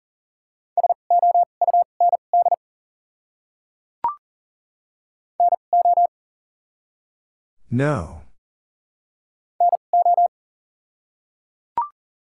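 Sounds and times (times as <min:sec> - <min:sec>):
Morse code beeps at 40 words per minute: 0:00.8 - 0:02.6, 0:05.4 - 0:06.1, 0:09.6 - 0:10.3
speech: 0:07.7 - 0:08.2.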